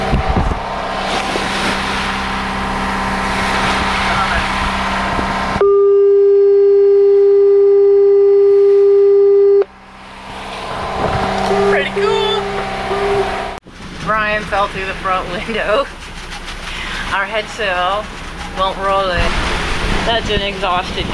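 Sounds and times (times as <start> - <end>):
windy rumbling noise: 0.0 - 5.6, 9.6 - 21.1
boat foghorn blast played through a speaker: 0.0 - 13.6
speech: 14.6 - 16.0, 17.1 - 21.1.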